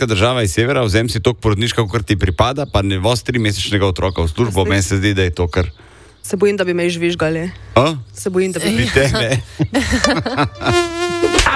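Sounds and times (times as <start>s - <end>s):
speech: 0.0s - 11.5s
laughter: 8.8s - 11.5s
mosquito buzzing: 10.6s - 11.5s.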